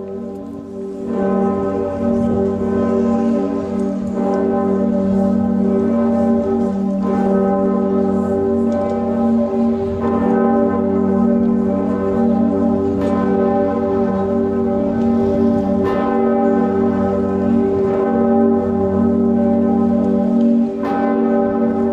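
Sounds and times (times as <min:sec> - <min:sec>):
cathedral bourdon bell tolling in G: 0:00.0 - 0:21.9.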